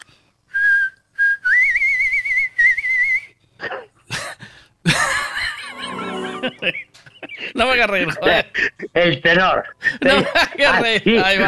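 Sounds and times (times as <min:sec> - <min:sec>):
person whistling a pop song melody: 0:00.5 - 0:03.3
laughter: 0:04.9 - 0:07.5, 0:10.0 - 0:11.4
speech: 0:06.6 - 0:07.0, 0:07.6 - 0:11.4.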